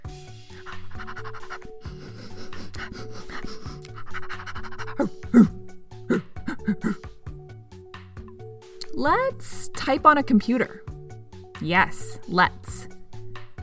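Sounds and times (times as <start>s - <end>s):
person imitating a dog panting: 0.5s - 7.0s
speech: 2.8s - 5.5s, 9.0s - 10.9s, 11.6s - 12.7s.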